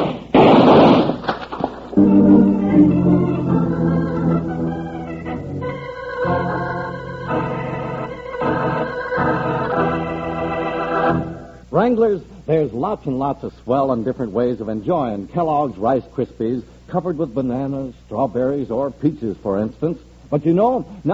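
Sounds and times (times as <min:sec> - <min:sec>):
gunshots from a hidden sneak gun: 0:00.0 - 0:01.6
music sting with sustained layered tones: 0:02.0 - 0:11.6
speech: 0:11.9 - 0:21.1.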